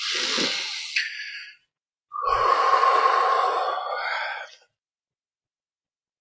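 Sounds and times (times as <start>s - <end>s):
big deep breaths during a tapping exercise: 0.0s - 4.8s.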